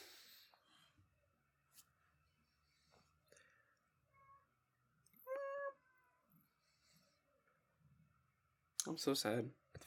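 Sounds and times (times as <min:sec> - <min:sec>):
cat meowing: 0:05.2 - 0:06.1
speech: 0:08.9 - 0:09.8.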